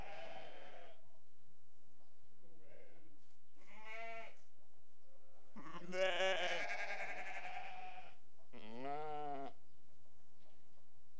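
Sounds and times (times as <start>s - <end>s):
restless sheep bleating: 0.0s - 1.0s, 3.7s - 4.4s, 5.6s - 9.6s.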